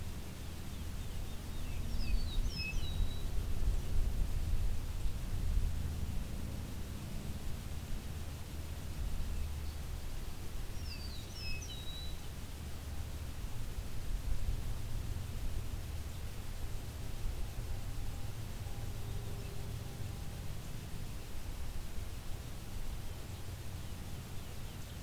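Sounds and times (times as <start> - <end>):
constant low-pitched background noise: 0.0 - 25.0
Eastern Meadowlark soft sweet whistled phrases: 2.0 - 3.2, 10.8 - 12.2.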